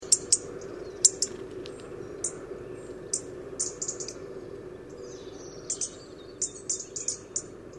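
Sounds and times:
low droning noise: 0.0 - 6.4
European robin Erithacus rubecula uttering high ticks and thin notes: 0.0 - 7.7.

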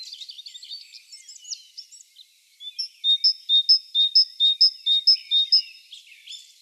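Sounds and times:
great tit Parus major song: 2.7 - 5.8.

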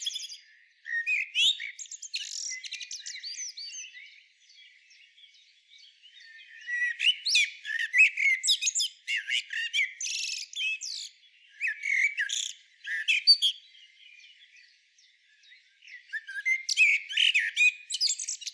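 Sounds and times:
Common blackbird Turdus merula song: 0.0 - 18.5.

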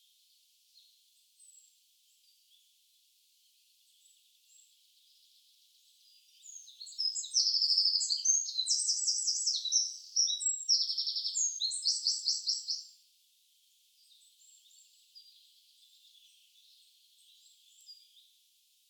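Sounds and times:
Eurasian wren song, Troglodytes troglodytes: 3.4 - 13.0, 13.9 - 18.4.

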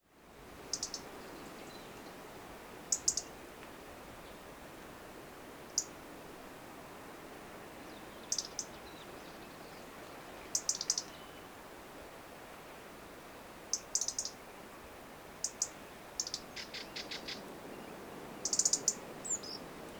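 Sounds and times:
constant hiss: 0.0 - 19.9
European robin Erithacus rubecula clicking calls: 0.7 - 1.1, 2.9 - 3.3, 5.7 - 6.0, 8.3 - 8.8, 10.5 - 11.2, 13.7 - 14.4, 15.4 - 17.4, 18.4 - 19.9.

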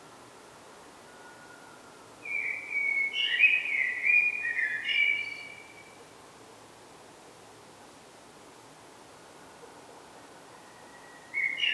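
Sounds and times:
common blackbird Turdus merula singing fluted warbling phrase: 2.2 - 5.7, 11.4 - 11.7.

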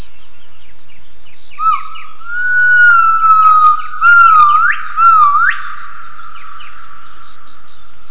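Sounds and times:
gibbon whistled calls with upward swoops: 1.6 - 5.8.

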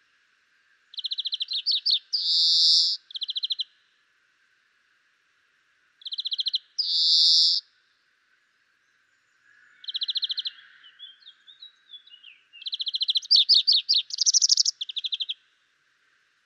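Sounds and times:
European greenfinch Chloris chloris song: 0.8 - 3.8, 6.0 - 7.7, 8.4 - 15.6.

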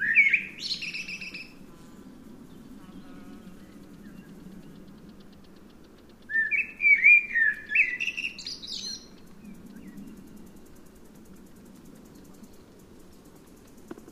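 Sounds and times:
Eurasian blackbird singing a mellow fluted warbling phrase: 0.0 - 1.6, 2.8 - 10.6
quiet low background hum: 0.0 - 14.1.

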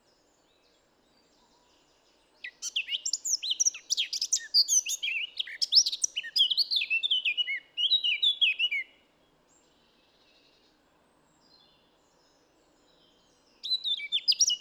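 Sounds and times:
Eurasian blackcap Sylvia atricapilla singing a hurried scratchy warble: 2.4 - 8.9, 13.6 - 14.5.

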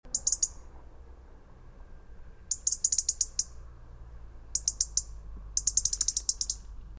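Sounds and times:
European robin Erithacus rubecula ticking calls: 0.1 - 0.7, 2.4 - 3.6, 4.5 - 6.8
faint low rumble: 0.1 - 6.9.

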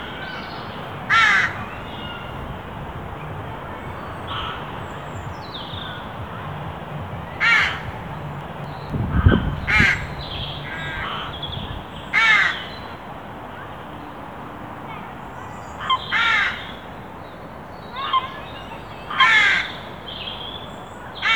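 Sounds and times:
Corvus corone carrion crow cawing: 1.1 - 2.3, 4.3 - 4.7, 7.4 - 7.9, 9.2 - 11.4, 12.2 - 12.7, 15.9 - 16.7, 19.1 - 19.8.

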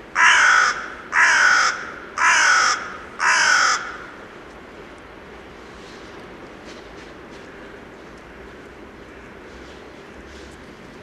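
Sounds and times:
carrion crow calling grating caws: 0.2 - 4.2.

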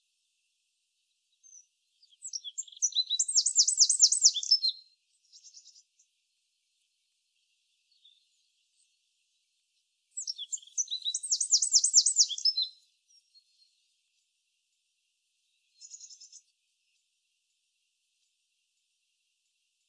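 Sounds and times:
Eurasian wren Troglodytes troglodytes singing: 1.4 - 5.8, 10.2 - 13.3, 15.8 - 16.4.

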